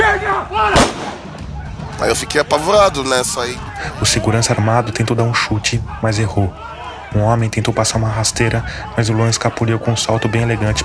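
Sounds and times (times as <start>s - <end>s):
tense shouting: 0.0s - 10.8s
gunshot from a .38 revolver: 0.7s - 1.5s
speech: 2.0s - 10.8s.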